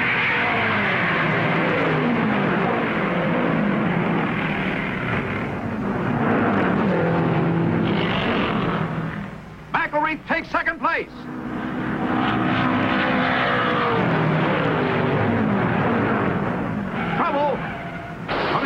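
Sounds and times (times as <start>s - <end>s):
race car engines roaring during a race on a track: 0.0s - 18.6s
man commentating on a race: 9.7s - 11.2s.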